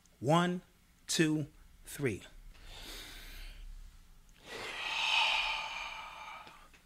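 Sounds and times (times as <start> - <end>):
speech: 0.2 - 2.4
group breathing in and out during a guided breathing exercise: 2.5 - 3.8, 4.4 - 6.8.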